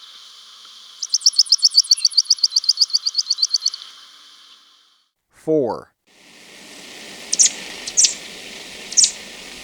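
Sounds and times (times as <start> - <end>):
grassland yellow-finch song of sharp chips in Ecuador: 1.0 - 3.8, 7.3 - 9.5
speech: 5.5 - 5.9.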